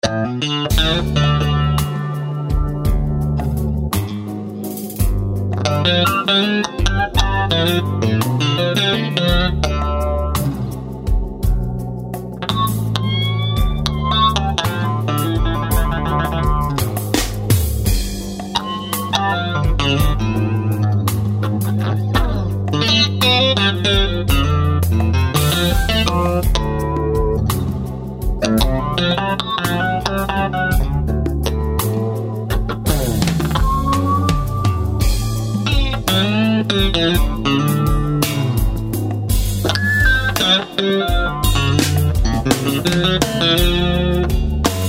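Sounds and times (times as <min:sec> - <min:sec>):
electric guitar playing blues with chorus and distortion: 0:00.0 - 0:44.8.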